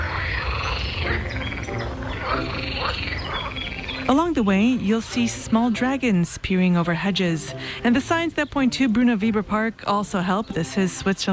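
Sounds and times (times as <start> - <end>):
chorus of toads croaking on lily pads at a forest edge in Switzerland: 0.0 - 11.3
speech: 4.1 - 11.3.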